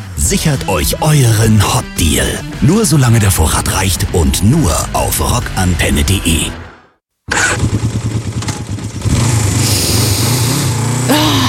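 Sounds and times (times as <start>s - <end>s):
speech: 0.2s - 6.6s
motorcycle engine starting and revving: 7.3s - 11.4s.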